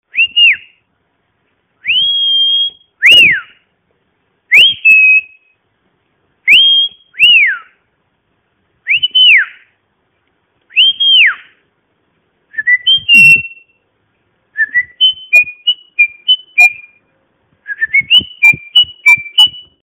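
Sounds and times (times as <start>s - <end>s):
whistling: 0.1s - 0.9s, 1.8s - 3.7s, 4.5s - 5.6s, 6.4s - 7.9s, 8.9s - 9.8s, 10.7s - 11.6s, 12.5s - 13.9s, 14.5s - 19.8s.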